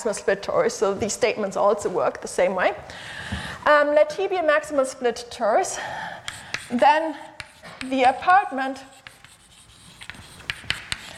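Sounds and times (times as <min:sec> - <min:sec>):
speech: 0:00.0 - 0:06.1, 0:06.7 - 0:08.9
writing on a board during a mathematics lecture: 0:06.2 - 0:11.1.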